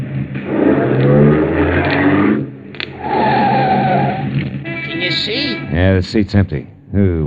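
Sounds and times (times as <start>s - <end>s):
car engine roaring as it accelerates in a chase: 0.0s - 4.7s
speech: 5.2s - 7.2s.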